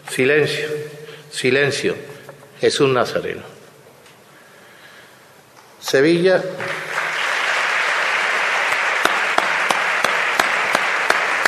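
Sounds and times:
speech: 0.2s - 3.6s, 5.9s - 6.8s
crowd applauding: 6.6s - 11.4s.

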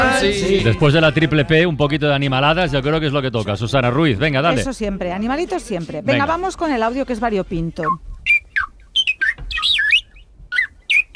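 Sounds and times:
speech: 0.2s - 8.4s
bird song with chirps and twittering whistles: 7.8s - 11.1s.

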